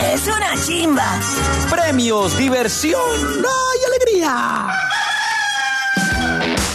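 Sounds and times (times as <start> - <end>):
speech: 0.2 - 5.0
rooster crowing: 4.6 - 6.6.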